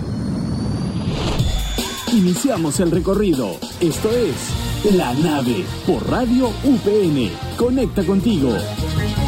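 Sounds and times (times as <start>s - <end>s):
spacecraft engines roaring at takeoff: 0.0s - 6.0s
speech: 2.2s - 9.1s.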